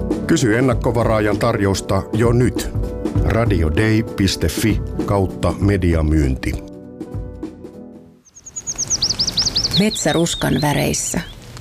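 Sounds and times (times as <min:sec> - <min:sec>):
speech: 0:00.3 - 0:06.7, 0:09.8 - 0:11.3
bird flocks chirping, gathered for autumn migration: 0:08.3 - 0:11.5.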